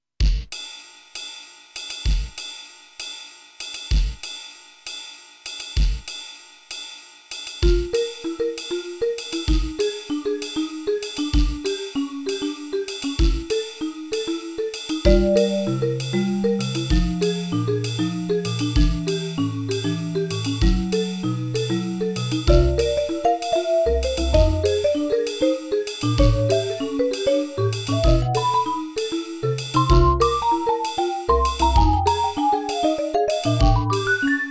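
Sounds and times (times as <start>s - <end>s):
ambient drums: 0.2s - 34.2s
vibraphone: 7.7s - 34.4s.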